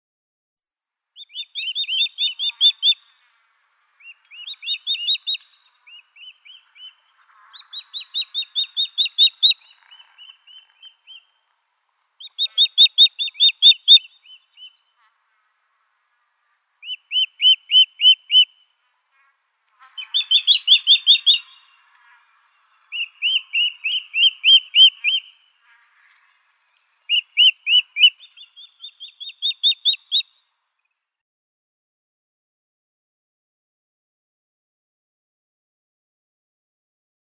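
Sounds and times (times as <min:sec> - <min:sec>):
Gabar Goshawk pair calling: 0:01.2 - 0:03.2, 0:04.0 - 0:11.4, 0:12.2 - 0:14.9, 0:16.8 - 0:18.7, 0:19.8 - 0:25.4, 0:26.0 - 0:30.4.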